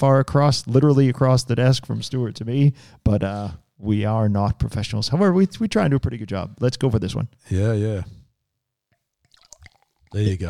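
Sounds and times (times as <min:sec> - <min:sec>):
speech: 0:00.0 - 0:08.2, 0:10.1 - 0:10.4
beer being poured into a glass: 0:09.2 - 0:10.4.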